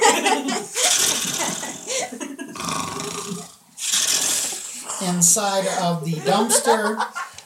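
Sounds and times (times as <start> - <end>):
laughter: 0.0 - 2.6, 5.6 - 7.4
person imitating snoring: 0.8 - 2.0, 2.6 - 5.0
speech: 5.0 - 7.2.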